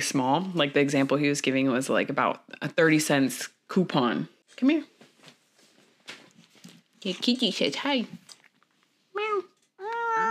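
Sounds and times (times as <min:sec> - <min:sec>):
speech: 0:00.0 - 0:04.9, 0:07.0 - 0:08.2
cat meowing: 0:09.2 - 0:10.2.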